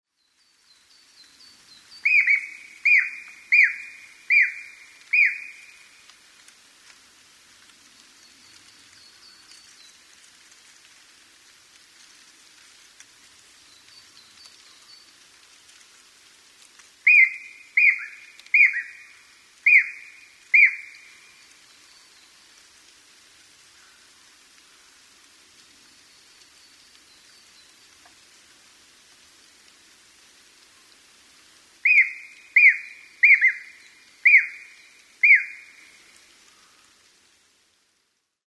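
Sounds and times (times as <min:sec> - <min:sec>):
aogera Japanese green woodpecker singing in Fujinomiya Shizuoka: 0:02.0 - 0:05.8, 0:17.0 - 0:21.2, 0:31.8 - 0:35.9.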